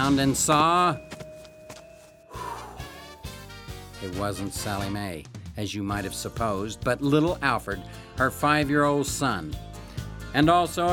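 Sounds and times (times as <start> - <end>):
heavy footsteps approaching: 0.0 - 3.5
sustained tonal background: 0.0 - 3.9
speech: 0.1 - 1.2, 4.0 - 9.7, 10.3 - 10.9.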